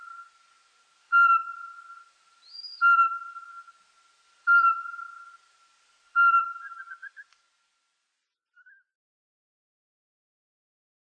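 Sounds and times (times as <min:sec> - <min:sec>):
Eurasian pygmy owl calling with mellow single whistles: 0:00.0 - 0:00.3, 0:01.1 - 0:03.8, 0:04.5 - 0:05.4, 0:06.2 - 0:07.3.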